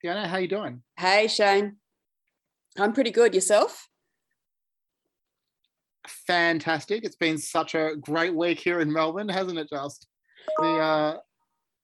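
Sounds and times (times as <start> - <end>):
speech: 0.0 - 1.8, 2.8 - 3.9, 6.0 - 11.3
device electronic notification tone: 10.5 - 11.2.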